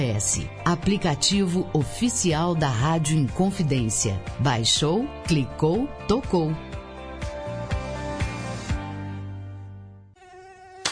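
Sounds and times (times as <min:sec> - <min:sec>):
speech: 0:00.0 - 0:06.7
mosquito buzzing: 0:07.4 - 0:10.8.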